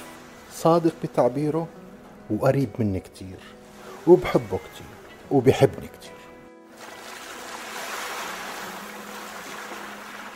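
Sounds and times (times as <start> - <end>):
steady ocean surf with breaking waves: 0.0 - 1.9, 3.4 - 5.4, 6.0 - 10.3
speech: 0.6 - 6.2.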